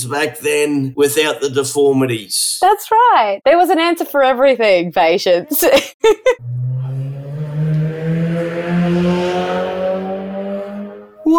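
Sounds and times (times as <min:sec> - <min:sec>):
speech: 0:00.0 - 0:07.1
motorbike roaring past: 0:06.4 - 0:11.3.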